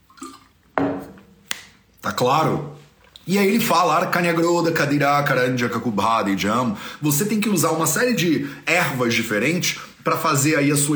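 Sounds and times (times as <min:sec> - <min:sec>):
person sipping water: 0:00.0 - 0:00.7, 0:02.9 - 0:03.3
wet gulp of water: 0:00.0 - 0:00.7
speech: 0:02.2 - 0:10.9.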